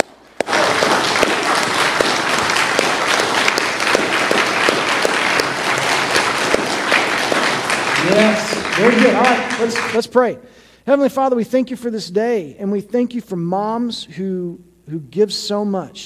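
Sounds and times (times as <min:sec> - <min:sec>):
large crowd at a sermon applauding: 0:00.0 - 0:10.0
speech: 0:08.8 - 0:16.0.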